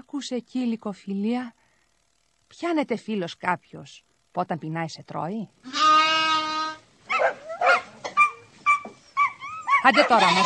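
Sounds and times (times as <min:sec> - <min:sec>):
speech: 0:00.1 - 0:01.6, 0:02.5 - 0:05.8, 0:09.9 - 0:10.4
dog whining howl: 0:07.1 - 0:10.4.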